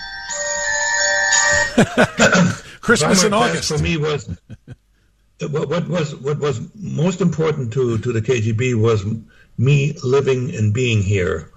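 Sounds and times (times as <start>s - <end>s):
mobile phone ringtone: 0.0s - 1.8s
laughter: 1.5s - 4.8s
speech: 1.8s - 4.7s, 5.4s - 11.5s.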